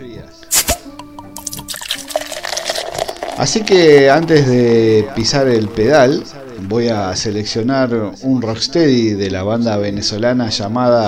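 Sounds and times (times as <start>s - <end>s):
cold beer cracked open with escaping gas hiss: 0.5s - 7.1s
speech: 3.4s - 11.0s.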